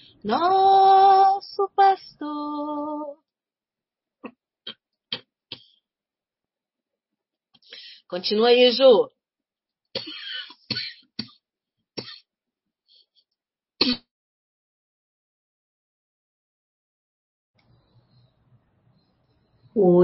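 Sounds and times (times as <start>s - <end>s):
speech: 0.2s - 3.2s, 8.1s - 9.2s, 10.0s - 10.2s, 19.8s - 20.0s
person coughing in a rough fit: 10.0s - 11.4s, 12.0s - 12.3s, 13.8s - 14.1s.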